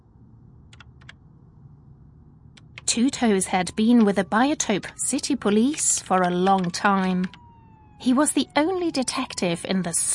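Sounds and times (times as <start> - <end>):
low steady hum: 0.0 - 10.1
slow typing on a computer keyboard: 0.7 - 1.2, 5.6 - 7.4
speech: 2.9 - 7.4, 8.0 - 10.1.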